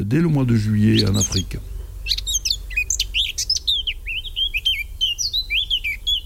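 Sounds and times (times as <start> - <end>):
speech: 0.1 - 2.3
steady low rumble: 0.1 - 6.2
common swifts calling with shrill screeching chirps: 0.5 - 6.2.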